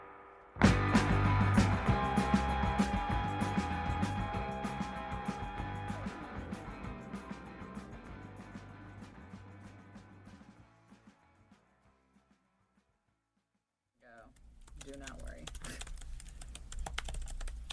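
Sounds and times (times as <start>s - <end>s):
noise: 0.0s - 17.7s
fingers typing on a computer keyboard: 14.3s - 17.7s.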